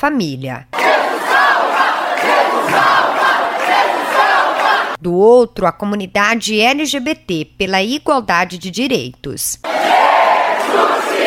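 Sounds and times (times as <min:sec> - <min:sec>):
speech: 0:00.0 - 0:00.8, 0:02.6 - 0:03.3, 0:05.0 - 0:09.7
rival groups chanting and shouting in an echoing hall: 0:00.7 - 0:05.0, 0:09.7 - 0:11.2.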